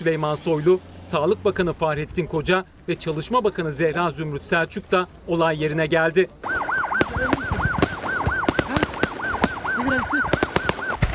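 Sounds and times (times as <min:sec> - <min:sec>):
speech: 0:00.0 - 0:06.4, 0:07.2 - 0:07.5, 0:09.8 - 0:10.4
wavering siren-like tone: 0:06.4 - 0:11.0
products exploding in a burning factory: 0:06.5 - 0:11.1.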